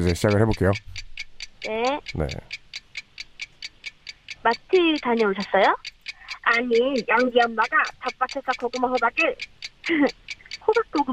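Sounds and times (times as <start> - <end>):
speech: 0.0 - 1.0, 1.6 - 2.6, 4.4 - 11.1
stopwatch ticking: 0.0 - 11.1
person answering: 1.6 - 2.4, 4.5 - 11.1
laughter: 9.9 - 10.1.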